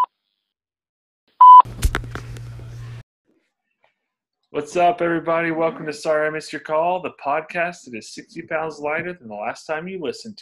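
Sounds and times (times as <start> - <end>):
sustained answering-machine beep: 1.4 - 1.6
speech: 4.5 - 10.4.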